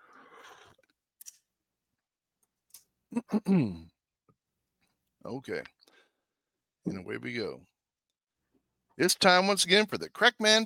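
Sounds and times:
person sipping water: 0.1 - 1.0
slurp: 0.1 - 1.0
speech: 3.1 - 3.9, 5.2 - 5.8, 6.8 - 7.7, 9.0 - 10.6.

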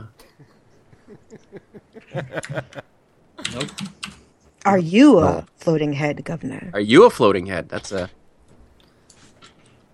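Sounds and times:
laughter: 0.4 - 2.9
speech: 1.3 - 2.9, 4.7 - 8.2
loud typing on a computer keyboard: 3.4 - 4.2.

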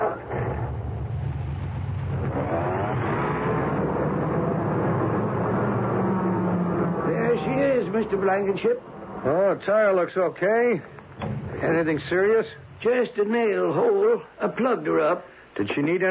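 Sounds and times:
car engine rumbling while backing out of a shop: 0.0 - 8.4, 11.0 - 13.5
speech: 8.0 - 16.0.

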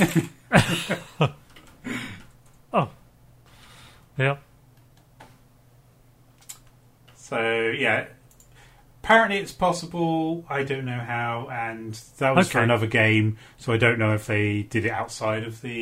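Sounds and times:
speech: 0.0 - 1.4, 4.2 - 4.5, 7.3 - 8.2, 9.1 - 15.7
typing on a computer keyboard: 6.4 - 6.7.

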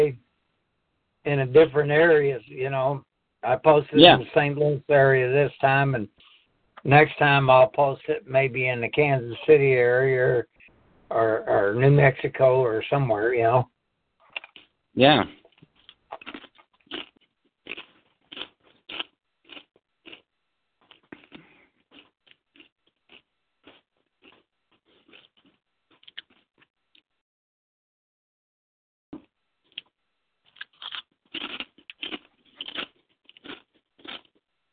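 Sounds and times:
speech: 0.0 - 0.2, 1.2 - 10.5, 11.1 - 13.7, 15.0 - 15.4
crunching food while eating supper: 14.2 - 14.7, 15.3 - 26.7, 29.6 - 34.5.

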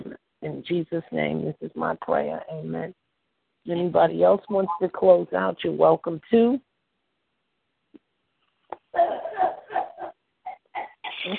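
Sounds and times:
speech: 0.6 - 3.0, 3.6 - 6.7
mother with a cold coughing at home: 9.0 - 11.3.

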